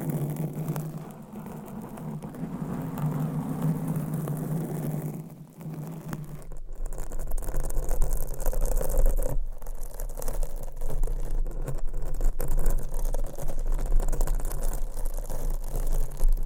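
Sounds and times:
nails scratching on a microphone cover: 0:00.0 - 0:16.4.

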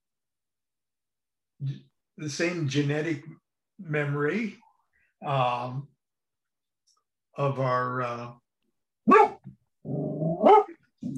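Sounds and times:
speech: 0:01.6 - 0:04.6, 0:05.2 - 0:05.9, 0:07.4 - 0:08.4, 0:09.1 - 0:11.1
dog barking: 0:09.0 - 0:09.5, 0:10.4 - 0:10.8.

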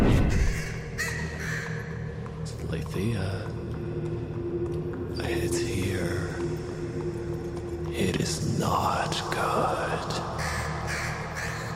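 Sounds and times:
crow cawing: 0:00.3 - 0:02.1, 0:10.2 - 0:11.7
steady low rumbling background: 0:01.7 - 0:11.7
speech: 0:02.7 - 0:03.7.

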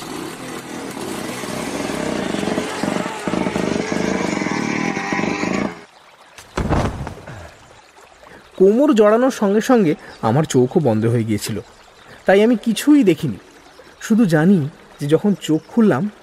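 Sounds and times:
motorcycle engine roaring as the bike launches toward a ditch: 0:00.0 - 0:05.8
speech: 0:08.6 - 0:16.2.

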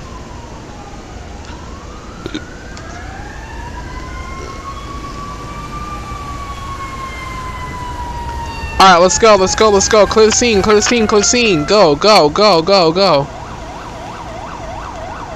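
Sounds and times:
fire engine siren wailing in rising and falling sweeps: 0:00.0 - 0:15.3
steady road rumble: 0:00.0 - 0:15.3
speech: 0:08.8 - 0:13.4.

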